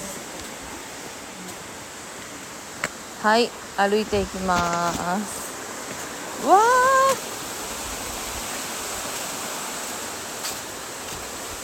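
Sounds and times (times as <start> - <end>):
waterfall rushing: 0.0 - 11.6
speech: 3.2 - 5.5, 6.4 - 7.3.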